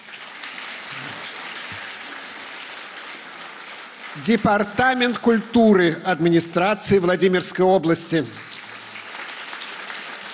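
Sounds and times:
crowd applauding: 0.0s - 5.9s, 8.4s - 10.3s
speech: 4.2s - 8.6s.

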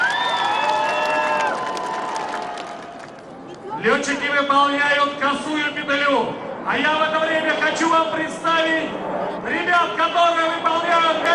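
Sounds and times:
audience applauding pilots at an air show: 0.0s - 3.3s
speech: 3.8s - 11.3s.

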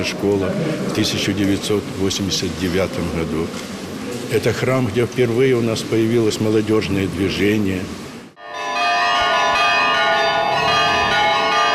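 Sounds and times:
speech: 0.0s - 8.0s
church bells ringing at a church on its patronal feast day: 8.4s - 11.7s.

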